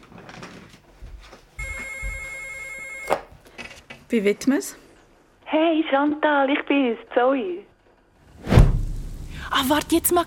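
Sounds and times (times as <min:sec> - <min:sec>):
telephone ringing with electronic trill: 0:01.6 - 0:03.4
speech: 0:04.1 - 0:04.8, 0:05.5 - 0:07.7, 0:09.6 - 0:10.2.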